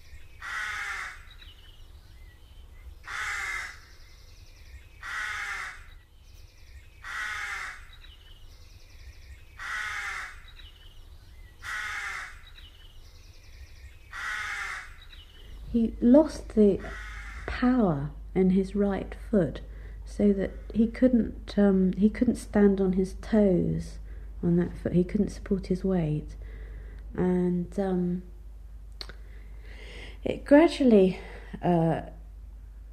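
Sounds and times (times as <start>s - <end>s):
low rumble: 0.0s - 32.9s
crow cawing with harsh raspy calls: 0.4s - 1.3s, 3.0s - 3.8s, 5.0s - 5.9s, 7.0s - 8.0s, 9.6s - 10.5s, 11.6s - 12.5s, 14.1s - 15.1s, 16.8s - 17.5s
speech: 15.8s - 17.0s, 17.6s - 26.4s, 27.1s - 28.3s, 30.2s - 32.2s.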